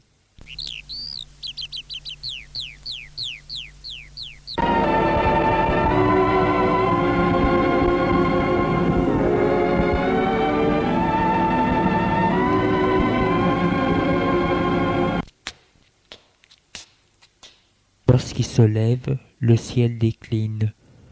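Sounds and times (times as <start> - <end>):
birds chirping in quick repeated sweeping notes: 0.0 - 15.0
loud dense sustained sound: 4.6 - 15.2
speech: 18.6 - 20.8.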